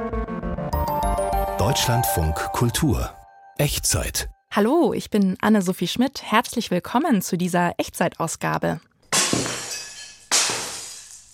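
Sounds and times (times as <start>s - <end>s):
speech: 1.1s - 9.6s
glass shattering: 9.1s - 11.3s
tinkling glass debris: 9.1s - 11.3s.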